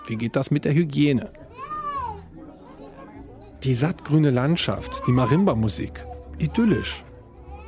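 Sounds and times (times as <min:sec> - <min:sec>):
faint voices: 0:00.0 - 0:07.6
speech: 0:00.1 - 0:01.7, 0:03.6 - 0:07.1
child crying or shouting in a drought-hit area: 0:01.5 - 0:02.2, 0:04.7 - 0:05.6, 0:06.5 - 0:07.6.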